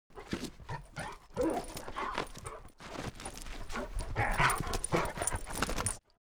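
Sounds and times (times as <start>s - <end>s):
big Labrador dog playing: 0.1s - 6.1s.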